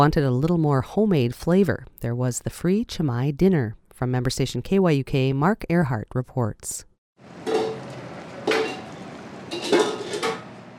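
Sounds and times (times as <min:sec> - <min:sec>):
speech: 0:00.0 - 0:07.4
pots and pans clanking and scraping while serving food: 0:07.3 - 0:10.7.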